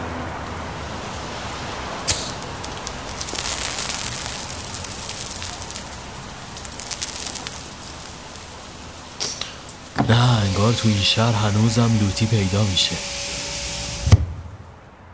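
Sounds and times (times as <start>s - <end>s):
bright hissing match flare: 1.2s - 14.1s
match being struck to light a cigarette: 2.1s - 9.7s
speech: 10.1s - 13.2s.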